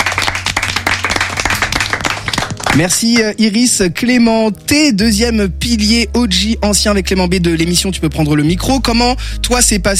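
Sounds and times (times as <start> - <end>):
audience clapping: 0.0 - 3.3
speech: 2.8 - 9.9.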